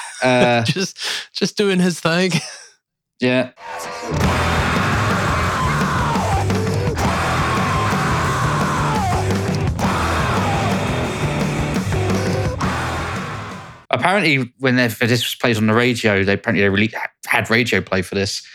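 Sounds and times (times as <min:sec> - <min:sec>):
speech: 0:00.2 - 0:02.6, 0:03.2 - 0:04.5, 0:14.0 - 0:18.5
rock vocalist screaming and yelling: 0:03.7 - 0:13.8.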